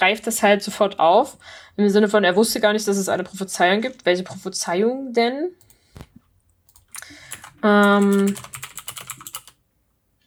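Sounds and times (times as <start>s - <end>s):
speech: 0.0s - 6.1s, 7.6s - 8.6s
typing on a computer keyboard: 5.6s - 9.6s.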